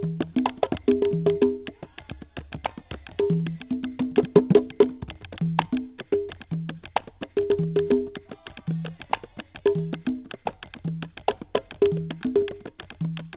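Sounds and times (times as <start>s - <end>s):
drums played on boards: 0.0s - 13.3s.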